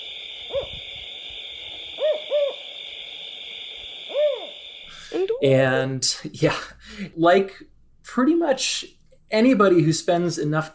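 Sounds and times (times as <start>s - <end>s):
California spotted owl hooting: 0.0s - 5.2s
high-pitched insect drone in a night forest: 0.0s - 5.5s
speech: 5.4s - 10.7s.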